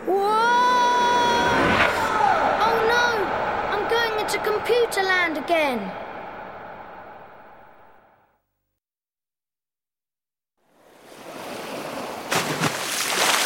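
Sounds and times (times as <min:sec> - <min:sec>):
ocean waves washing in a steady hiss: 0:00.8 - 0:08.2, 0:10.8 - 0:13.4
speech: 0:04.3 - 0:06.1.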